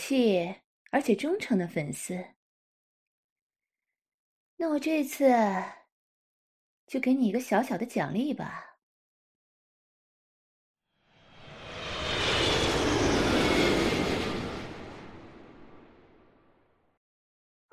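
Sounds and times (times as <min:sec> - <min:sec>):
speech: 0:00.1 - 0:02.4, 0:04.6 - 0:05.8, 0:06.9 - 0:08.7
airplane landing with broad engine roar: 0:11.2 - 0:16.0.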